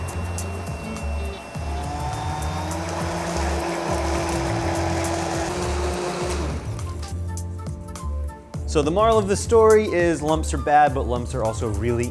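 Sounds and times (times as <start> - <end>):
immersion blender churning thick gravy: 0.0 - 7.1
speech: 8.7 - 12.0.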